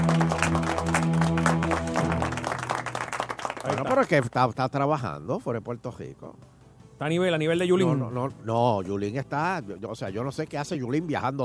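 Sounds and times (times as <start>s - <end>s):
sustained musical tone: 0.0s - 3.5s
applause: 0.0s - 4.6s
speech: 4.0s - 11.4s.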